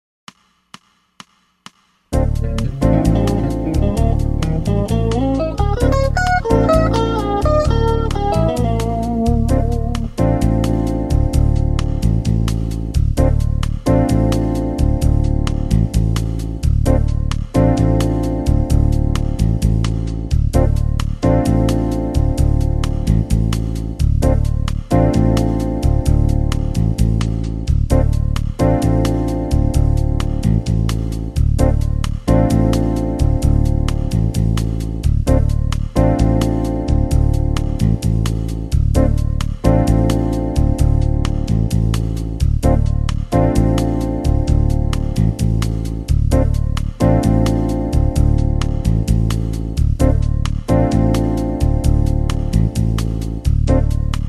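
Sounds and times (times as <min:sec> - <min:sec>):
backing track for improvisation practice: 0:02.2 - 0:54.2.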